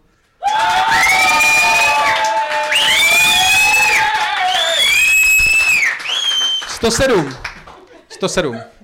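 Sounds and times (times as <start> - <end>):
large crowd cheering and shouting: 0.4 - 5.8
speech: 6.9 - 7.5, 8.2 - 8.7
laughter: 7.6 - 8.8.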